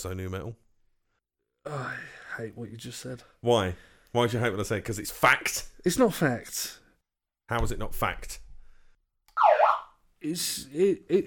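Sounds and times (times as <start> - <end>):
speech: 0.0 - 0.6, 1.6 - 6.8, 7.5 - 8.4, 10.2 - 11.2
electronic alarm wailing: 9.4 - 10.0.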